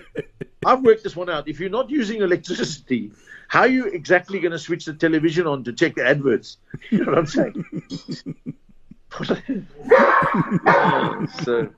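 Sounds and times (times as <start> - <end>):
laughter: 0.0 - 1.6, 6.8 - 11.7
speech: 0.2 - 11.7
boxer dog barking and yelping: 9.8 - 11.2.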